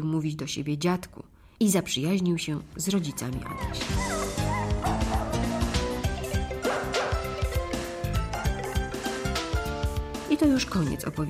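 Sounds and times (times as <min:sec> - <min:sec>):
speech: 0:00.0 - 0:05.1, 0:10.4 - 0:11.2
dog barking and yipping: 0:03.2 - 0:09.4
dense steady musical backdrop: 0:03.7 - 0:10.4.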